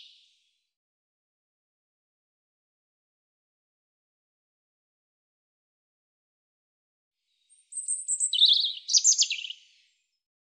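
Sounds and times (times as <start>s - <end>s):
European robin singing: 7.5s - 9.9s.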